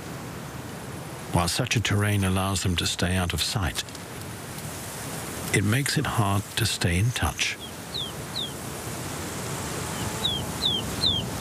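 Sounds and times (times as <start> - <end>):
steady hiss of background noise: 0.0 - 11.4
speech: 1.3 - 4.0, 5.5 - 7.6
ptarmigan chicks giving plaintive descending whistles: 7.6 - 8.6, 10.0 - 11.4.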